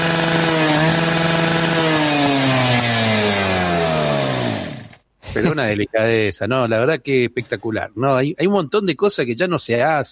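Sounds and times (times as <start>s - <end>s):
dentist's drill whirring: 0.0s - 5.0s
speech: 5.6s - 10.1s.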